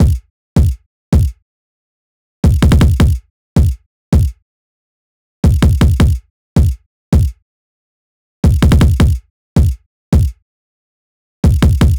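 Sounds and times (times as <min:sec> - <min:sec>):
kick drum pattern in a hyperpop beat: 0:00.0 - 0:01.4, 0:02.4 - 0:04.4, 0:05.4 - 0:07.4, 0:08.4 - 0:10.4, 0:11.4 - 0:11.9.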